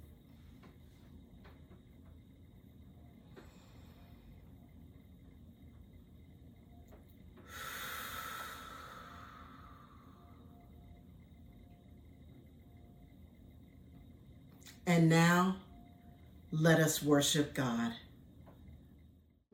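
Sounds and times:
group taking a deep centering breath together at a graduation worship service: 7.4 - 9.8
speech: 14.8 - 15.6, 16.5 - 18.0.

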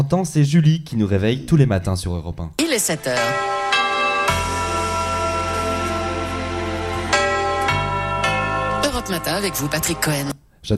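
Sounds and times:
speech: 0.1 - 3.7, 9.1 - 10.7
radio station jingle chime with bell-like chords: 2.6 - 10.3.

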